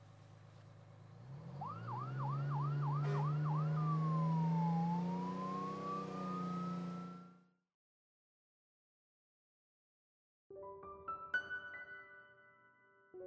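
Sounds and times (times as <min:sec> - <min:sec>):
steady low engine rumble: 0:00.0 - 0:07.4
ambulance siren: 0:01.4 - 0:07.4.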